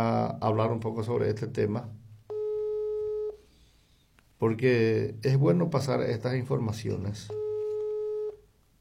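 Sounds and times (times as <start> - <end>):
speech: 0.0 - 2.0, 4.4 - 7.4
telephone busy tone: 2.3 - 3.4, 7.3 - 8.4.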